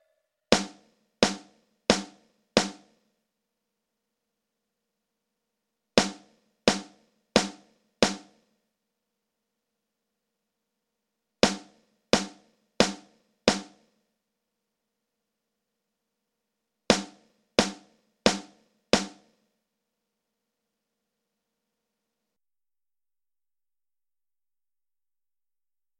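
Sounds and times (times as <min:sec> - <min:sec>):
drums: 0:00.5 - 0:03.0, 0:06.0 - 0:08.4, 0:11.4 - 0:13.9, 0:16.9 - 0:19.4.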